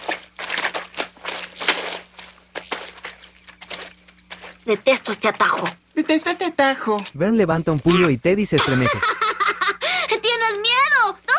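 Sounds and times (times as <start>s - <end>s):
several people's wet footsteps squelching through mud: 0.0s - 8.8s
faint steady hum: 0.0s - 11.3s
speech: 4.7s - 9.4s
laughter: 7.9s - 10.1s.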